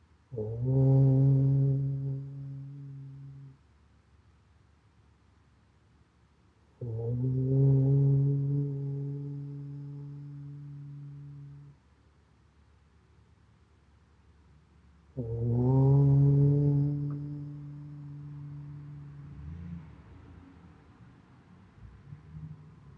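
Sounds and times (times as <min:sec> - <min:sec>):
low chanted Om tones: 0:00.3 - 0:03.6, 0:06.8 - 0:11.8, 0:15.1 - 0:20.2.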